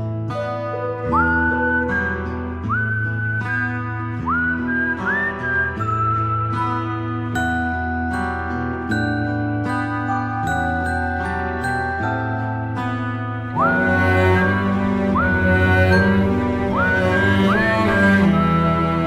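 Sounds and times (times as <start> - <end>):
guitar whistle ringtone: 0.2 - 19.0.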